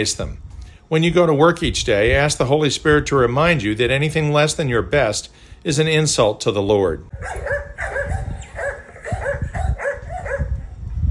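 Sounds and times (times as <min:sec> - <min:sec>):
speech: 0:00.0 - 0:07.7
Harlequin Great Danes barking deeply: 0:07.1 - 0:11.0.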